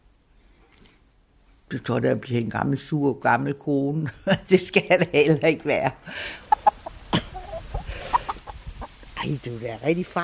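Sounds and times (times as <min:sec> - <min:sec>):
speech: 0:01.7 - 0:06.4, 0:09.3 - 0:10.2
several hens clucking in a henyard: 0:05.0 - 0:10.2
soft rustling and scratching in a henyard: 0:06.5 - 0:10.2
laughter: 0:06.6 - 0:08.4.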